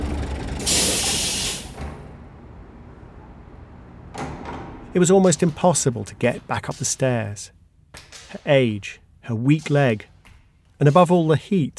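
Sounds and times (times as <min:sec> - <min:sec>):
bus engine low idling rumble: 0:00.0 - 0:07.4
bus air brake releasing: 0:00.6 - 0:02.0
speech: 0:05.0 - 0:07.6, 0:08.3 - 0:10.1, 0:10.8 - 0:11.7.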